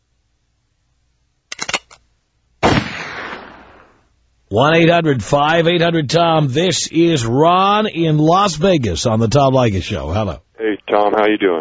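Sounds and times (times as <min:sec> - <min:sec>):
gunshot sound effect: 0:02.6 - 0:04.0
speech: 0:04.5 - 0:11.5.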